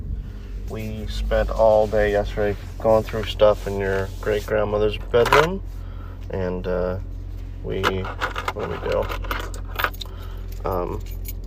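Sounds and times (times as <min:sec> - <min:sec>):
speech: 0:00.7 - 0:09.4, 0:10.6 - 0:11.2
large bunch of keys jangling as it is handled: 0:08.0 - 0:11.4.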